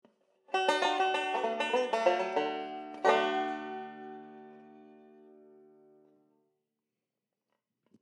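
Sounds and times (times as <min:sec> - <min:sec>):
banjo in D tuning: 0:00.4 - 0:06.0.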